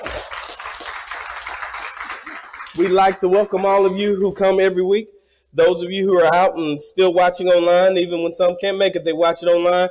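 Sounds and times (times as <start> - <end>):
crowd clapping in a large room: 0.0 - 4.5
speech: 2.8 - 9.9.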